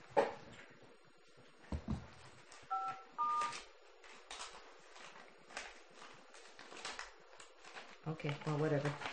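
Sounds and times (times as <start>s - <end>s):
soft rustling: 0.5s - 9.1s
telephone keypad tones dialing star 5 to record a board meeting call: 2.7s - 3.6s
speech: 8.1s - 9.1s.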